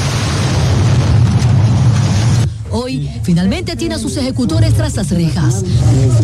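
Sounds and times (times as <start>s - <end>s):
car bomb explosion at a shopping mall in Guayaquil: 0.0s - 2.5s
speech: 3.2s - 6.2s.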